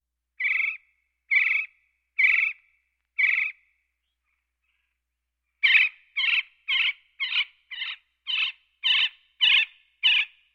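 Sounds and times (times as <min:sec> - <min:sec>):
Gila woodpecker calling: 0:00.4 - 0:03.7, 0:05.6 - 0:10.4.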